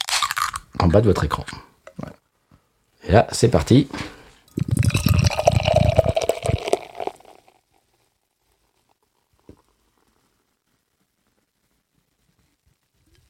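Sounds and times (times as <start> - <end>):
speech: 0.8 - 1.7, 3.1 - 4.7
drink poured from a can, foaming: 4.5 - 7.7.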